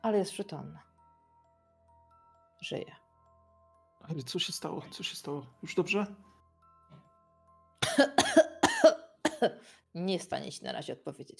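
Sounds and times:
speech: 0.0s - 0.9s, 2.6s - 3.0s, 4.0s - 6.3s, 8.0s - 8.4s, 9.4s - 11.3s
woman coughing and choking after swallowing water: 7.8s - 9.6s.

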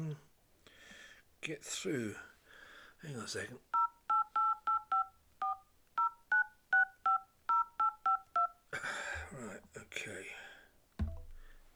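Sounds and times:
speech: 1.4s - 2.3s, 3.0s - 3.7s, 9.4s - 10.4s
two-tone telephone keypad beeps dialing a number: 3.8s - 8.6s.

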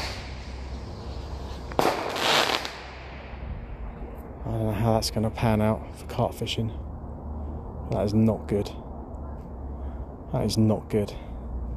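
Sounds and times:
firework crackling burst: 0.0s - 3.4s
steady low outdoor rumble: 0.0s - 11.7s
firework bang over a lake: 1.7s - 3.4s
speech: 4.5s - 6.9s, 7.9s - 8.8s, 10.3s - 11.3s.

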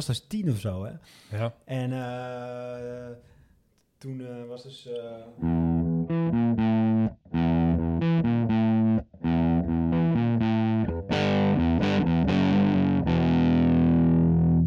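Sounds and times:
speech: 0.0s - 3.3s, 4.0s - 6.2s
heavily distorted electric guitar playing metal riffs: 5.4s - 14.6s.

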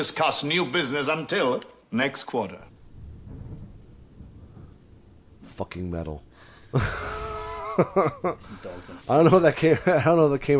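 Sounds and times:
speech: 0.0s - 2.7s, 5.6s - 7.2s, 7.8s - 10.5s
steady hiss of rain: 2.6s - 10.5s
low rolling thunder during a thunderstorm: 2.7s - 8.6s
laughter: 6.8s - 10.3s.

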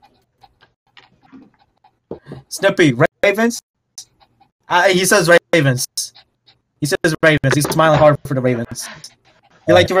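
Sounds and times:
dog panting in quick rhythmic huffs: 0.0s - 2.2s, 4.1s - 4.6s, 8.6s - 9.9s
speech: 2.5s - 3.6s, 4.7s - 6.2s, 6.8s - 9.9s.

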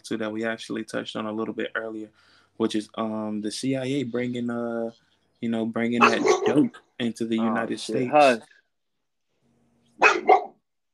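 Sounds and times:
speech: 0.0s - 8.6s
dog barking: 6.0s - 6.7s, 10.0s - 10.6s.

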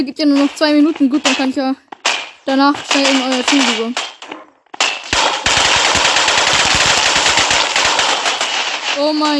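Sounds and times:
speech: 0.0s - 4.1s, 9.0s - 9.3s
automatic gunfire in a video game battle: 1.2s - 9.3s.

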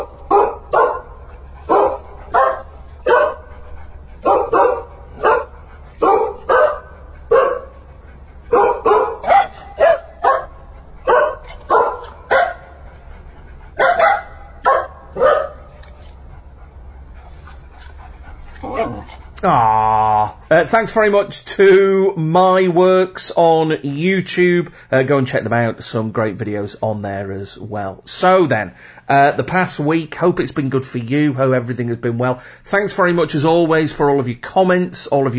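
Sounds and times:
dogs barking in rhythmic phrases like a sung tune: 0.0s - 3.6s, 4.2s - 13.0s, 13.7s - 15.9s
speech: 19.4s - 19.8s, 20.5s - 35.3s.

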